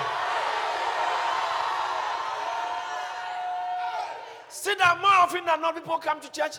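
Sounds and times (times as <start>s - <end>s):
church audience shouting hallelujah: 0.0s - 4.5s
speech: 4.8s - 6.5s.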